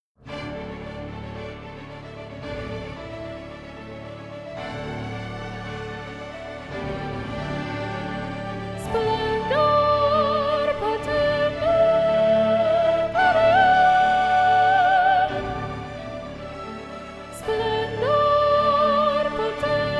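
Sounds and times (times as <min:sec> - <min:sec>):
soprano singing: 0:06.6 - 0:19.9.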